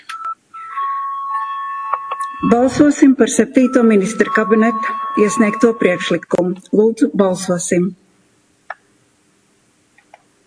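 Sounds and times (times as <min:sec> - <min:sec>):
electronic bell signal calling members of a parliament chamber to a vote: 0:00.4 - 0:06.8
speech: 0:02.4 - 0:08.0.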